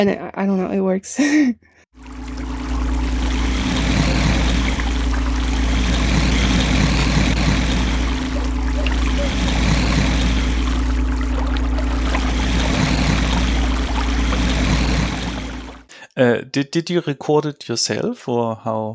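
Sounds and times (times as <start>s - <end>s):
speech: 0.0s - 1.7s, 16.2s - 18.9s
churning gurgling water: 2.0s - 15.9s
loud steady vacuum cleaner hum: 2.0s - 15.9s.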